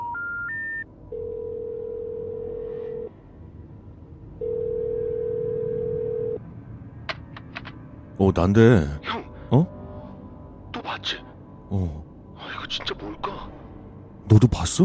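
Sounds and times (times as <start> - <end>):
rising phone dial beeps: 0.0 - 1.3
phone ringback tones: 0.0 - 3.1, 4.4 - 6.4
speech: 8.2 - 9.8, 11.0 - 12.0, 14.3 - 14.8.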